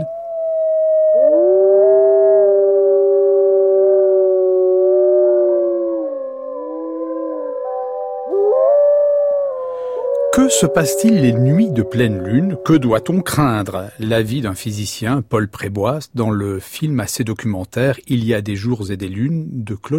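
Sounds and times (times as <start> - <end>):
chorus of wolves and dogs howling together: 0.2 - 14.0
speech: 10.5 - 19.9.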